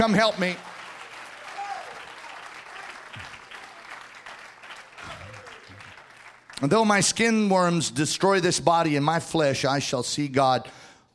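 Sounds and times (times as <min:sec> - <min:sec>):
speech: 0:00.0 - 0:00.7, 0:06.6 - 0:10.8
church audience clapping during a sermon: 0:00.0 - 0:07.4.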